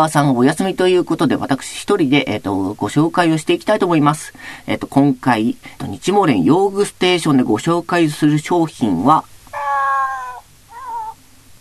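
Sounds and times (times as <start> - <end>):
speech: 0.0 - 9.3
cat meowing: 9.5 - 11.2.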